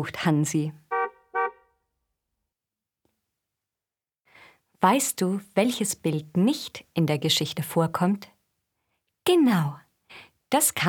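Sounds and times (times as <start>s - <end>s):
speech: 0.0s - 0.8s, 4.8s - 8.3s, 9.2s - 10.8s
car horn honking: 0.9s - 1.8s.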